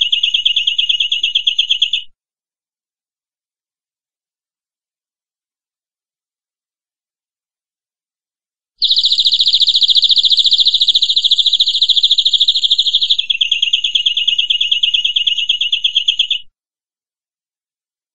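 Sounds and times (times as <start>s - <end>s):
cage canary training song: 0.0s - 2.1s, 8.8s - 16.5s.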